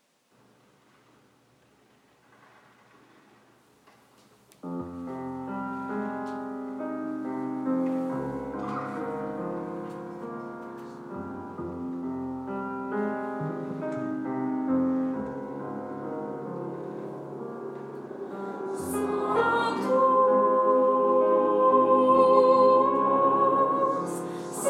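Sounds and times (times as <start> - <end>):
tenor choir singing a mass: 5.0 - 24.6.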